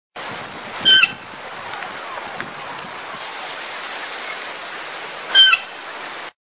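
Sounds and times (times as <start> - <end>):
magpie calling: 0.8 - 1.2, 5.3 - 5.7.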